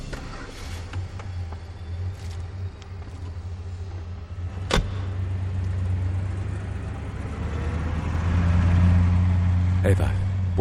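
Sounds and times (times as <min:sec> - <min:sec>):
car engine humming as the car pulls away: 0:00.0 - 0:10.5.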